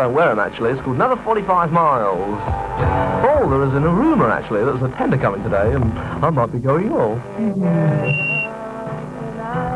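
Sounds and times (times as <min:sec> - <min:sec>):
speech: 0:00.0 - 0:08.3
dense full-bodied music: 0:00.8 - 0:09.7
person whistling a high note: 0:08.0 - 0:08.5.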